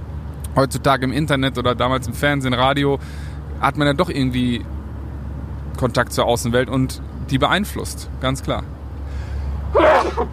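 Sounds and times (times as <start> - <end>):
speech: 0.6 - 4.8, 5.8 - 8.8, 9.7 - 10.3
inhale: 3.0 - 3.4, 9.0 - 9.6
sneeze: 9.8 - 10.3.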